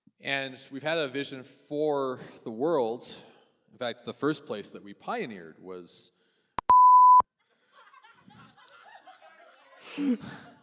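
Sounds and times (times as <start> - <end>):
speech: 0.2 - 6.2, 9.9 - 10.5
censor beep: 6.6 - 7.2
laughter: 7.5 - 10.6.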